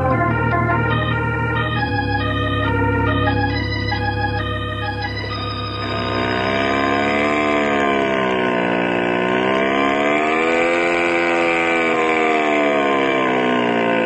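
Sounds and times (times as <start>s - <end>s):
hot rod car engine revving: 0.0s - 14.0s.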